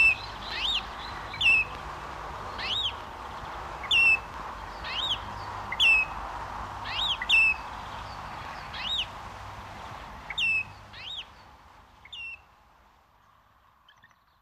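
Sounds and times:
Great Grey Shrike calling with ringing whistled notes: 0.0s - 1.7s, 3.8s - 6.2s, 6.9s - 7.6s, 10.3s - 11.3s, 12.0s - 12.5s
soft continuous hiss: 0.0s - 14.4s.

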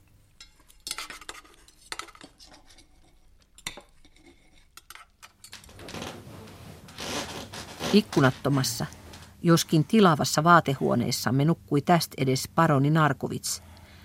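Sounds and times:
knife and fork cutting food on plate: 0.4s - 5.4s
speech: 7.9s - 13.7s.

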